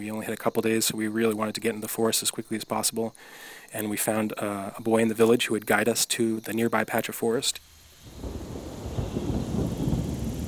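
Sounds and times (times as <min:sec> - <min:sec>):
speech: 0:00.0 - 0:08.4
steady rain falling in a patch of forest near a village: 0:07.6 - 0:10.4.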